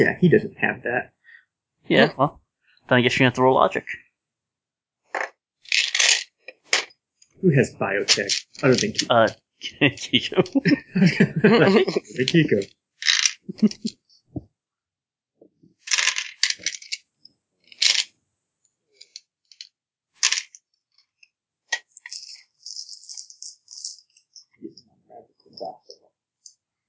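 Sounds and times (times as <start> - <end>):
speech: 0.0 - 1.2, 1.9 - 4.0, 7.4 - 14.4
fork dropped into a bag of dice: 5.2 - 6.9, 8.0 - 9.3, 11.6 - 13.9, 15.9 - 17.0, 17.7 - 18.1, 19.0 - 20.6, 21.7 - 24.5
laughter: 7.4 - 12.6, 13.4 - 14.0.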